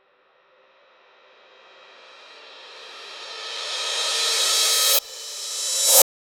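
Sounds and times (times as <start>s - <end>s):
reverse cymbal riser: 1.8s - 6.0s.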